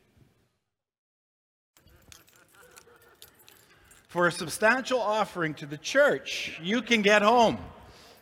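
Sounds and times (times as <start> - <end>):
bunch of car keys with a small flashlight jangling: 1.8 - 4.9
clinking and shuffling noise: 1.8 - 5.4
speech: 4.1 - 7.8.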